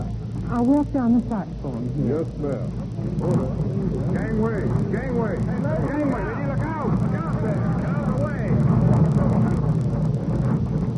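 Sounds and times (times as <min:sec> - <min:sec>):
busy platform background: 0:00.0 - 0:10.9
speech: 0:00.5 - 0:08.6
heavy wheeled baggage truck rumbling past on platform: 0:02.7 - 0:10.9.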